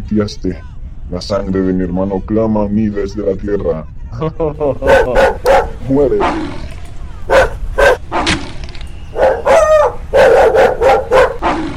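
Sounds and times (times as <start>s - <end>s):
speech: 0.1s - 6.6s
laughter: 4.1s - 5.8s
dog barking and snarling aggressively while attacking: 4.8s - 11.7s.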